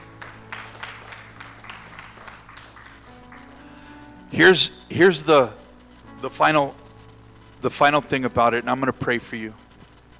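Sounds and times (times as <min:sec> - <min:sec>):
crowd clapping: 0:00.0 - 0:04.0
speech: 0:04.3 - 0:05.6, 0:06.2 - 0:06.8, 0:07.6 - 0:09.6.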